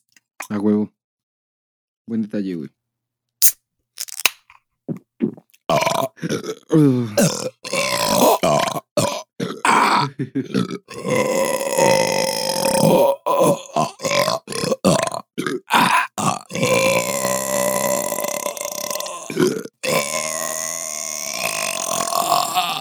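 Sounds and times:
speech: 0.5 - 1.0, 2.1 - 2.8, 6.2 - 8.9, 10.1 - 12.1
loud drawn-out burp: 5.3 - 22.7.

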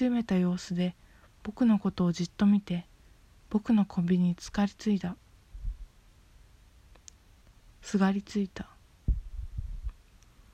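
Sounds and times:
speech: 0.0 - 2.9, 3.5 - 5.2, 7.8 - 8.7
deep heartbeat: 5.6 - 5.9, 9.1 - 10.0.

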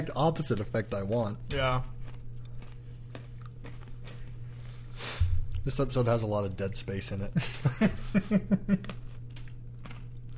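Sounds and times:
speech: 0.0 - 2.0, 5.6 - 9.0
low hum: 0.0 - 10.3
person chewing crisp food: 0.1 - 4.9, 8.6 - 10.3
laughter: 7.4 - 9.0.

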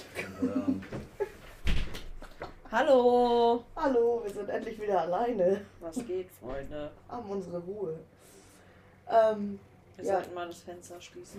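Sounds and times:
speech: 0.4 - 0.8, 2.7 - 8.2, 9.1 - 11.3
door shutting with a dull low thump: 0.9 - 2.2.

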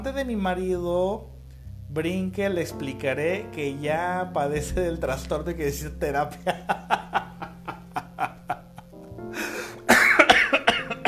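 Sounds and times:
speech: 0.0 - 1.3, 1.9 - 7.0
laughter: 6.5 - 8.9
person coughing: 9.9 - 11.0.

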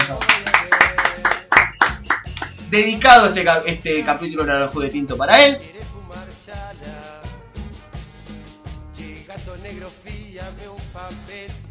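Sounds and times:
small group applauding: 0.0 - 2.7
speech: 0.1 - 0.3, 2.7 - 5.8.

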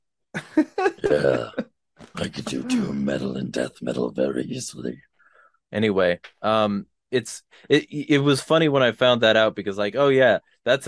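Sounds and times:
laughter: 0.4 - 1.6
speech: 0.6 - 1.6, 2.3 - 5.1, 5.7 - 10.8
person coughing harshly: 1.0 - 1.6.

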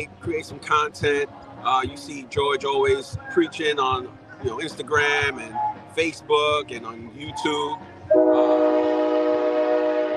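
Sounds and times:
speech: 0.0 - 8.7
low rumble of passing train rail noise: 0.0 - 10.1
approaching train horn blast: 8.1 - 10.1.

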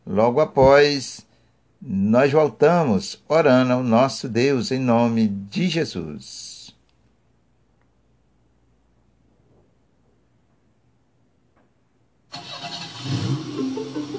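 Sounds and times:
speech: 0.1 - 6.5
car engine cranking and starting into idle: 12.3 - 14.1.

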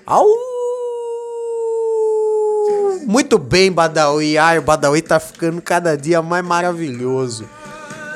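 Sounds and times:
person imitating a wolf howl: 0.0 - 3.0
speech: 0.1 - 0.6, 3.0 - 7.6.

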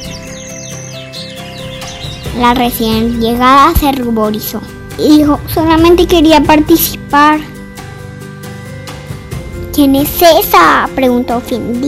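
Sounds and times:
birds chirping and tweeting: 0.0 - 11.8
speech: 2.4 - 7.5, 9.8 - 11.8.

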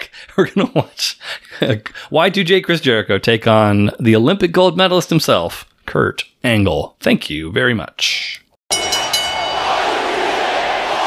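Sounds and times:
speech: 0.4 - 9.0
large arena crowd roaring: 8.9 - 11.0.

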